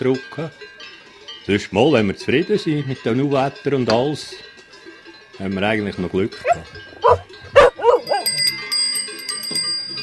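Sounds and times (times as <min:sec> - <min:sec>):
speech: 0:00.0 - 0:00.6, 0:01.5 - 0:04.5, 0:05.4 - 0:07.6
high bright ringing bell tones: 0:05.5 - 0:10.0
eight-year-old farm herding dog barking: 0:06.4 - 0:08.4.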